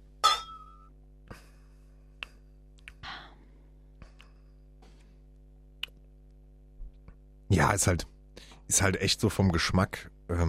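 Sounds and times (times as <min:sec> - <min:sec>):
beer glasses clinking in a toast: 0:00.2 - 0:00.9
speech: 0:07.6 - 0:08.1, 0:08.7 - 0:10.4.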